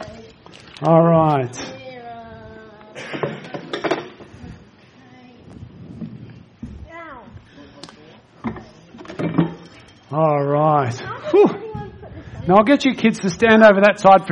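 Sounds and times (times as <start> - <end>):
speech: 0.8 - 1.8, 10.2 - 11.6, 12.4 - 14.2
chairs being fetched, carried and set down: 3.0 - 4.4, 8.4 - 9.8.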